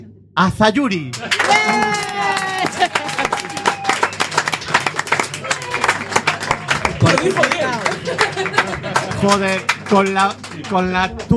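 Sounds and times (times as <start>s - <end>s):
speech: 0.4s - 3.3s, 7.2s - 11.3s
crowd applauding: 1.1s - 11.3s
cheers and excited voices: 1.2s - 4.2s, 5.3s - 8.0s
laughter: 1.2s - 11.3s.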